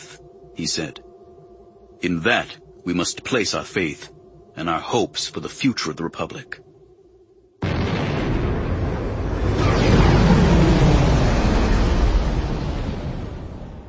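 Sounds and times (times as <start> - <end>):
speech: 0.6 - 1.1, 2.0 - 6.7
blue and white starfighter blasting upward from a landing deck into a gale: 7.6 - 13.8.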